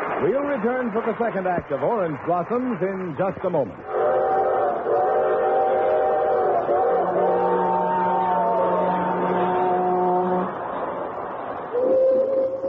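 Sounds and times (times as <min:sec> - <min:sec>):
speech: 0:00.2 - 0:04.0
freight train whistle blasts: 0:03.9 - 0:10.6, 0:11.7 - 0:12.6.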